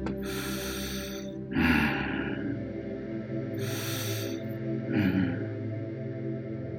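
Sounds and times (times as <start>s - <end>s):
bear breathing slowly and deeply: 0.0s - 2.7s, 3.5s - 5.6s
steady low drone: 0.0s - 6.7s.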